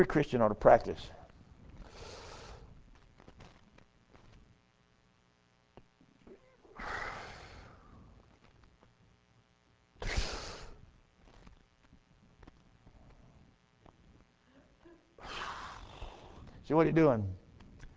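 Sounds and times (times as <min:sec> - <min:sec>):
speech: 0:00.0 - 0:01.2, 0:16.7 - 0:17.4
deep breathing in and out: 0:01.8 - 0:02.8, 0:06.8 - 0:08.2, 0:14.4 - 0:16.6.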